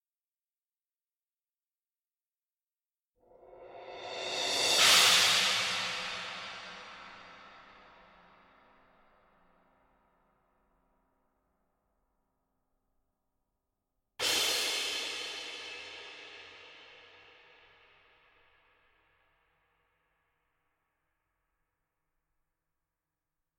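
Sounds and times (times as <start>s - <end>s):
cymbals: 3.6s - 8.0s, 14.2s - 17.4s.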